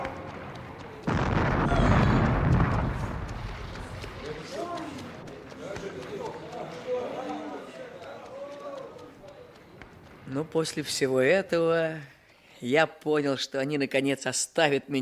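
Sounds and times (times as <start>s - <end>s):
ship's cannon blast: 1.0s - 4.2s
speech: 10.4s - 15.0s.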